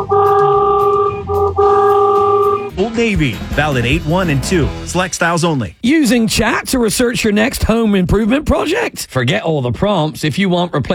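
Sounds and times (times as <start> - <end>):
county road-marking truck air horn blaring: 0.0 - 2.7
speech: 3.0 - 10.9.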